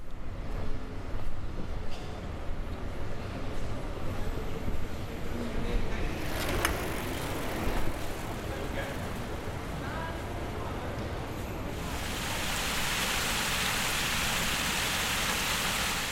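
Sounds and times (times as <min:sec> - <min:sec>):
low continuous city rumble on the Gran Vía closed to traffic: 0:00.0 - 0:16.1.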